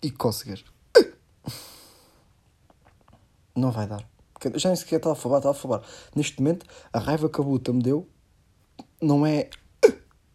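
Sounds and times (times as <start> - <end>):
speech: 0.0 - 0.8, 3.6 - 8.2, 9.0 - 10.0
hiccups: 0.9 - 1.2, 9.8 - 10.1.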